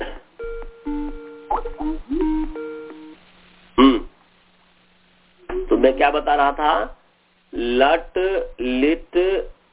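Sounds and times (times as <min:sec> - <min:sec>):
telephone ringing with an incoming call: 0:00.4 - 0:03.2
speech: 0:05.9 - 0:09.5.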